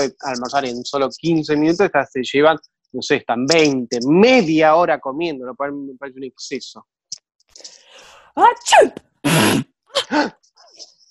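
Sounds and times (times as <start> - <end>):
speech: 0.0 - 7.0, 8.4 - 10.9
loud breathy sneeze: 8.6 - 10.3
person gasping: 10.0 - 10.4.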